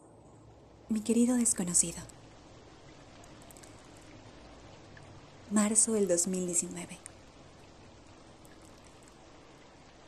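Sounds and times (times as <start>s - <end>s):
steady rain pattering against a window: 0.0s - 10.0s
speech: 0.9s - 2.2s, 5.5s - 7.2s.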